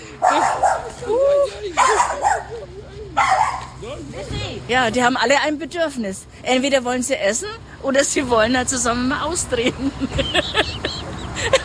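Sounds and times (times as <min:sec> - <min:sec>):
laughter: 0:00.0 - 0:04.3, 0:09.6 - 0:11.6
dog barking: 0:00.2 - 0:01.0, 0:01.8 - 0:02.5, 0:03.2 - 0:03.8
speech: 0:04.7 - 0:10.7.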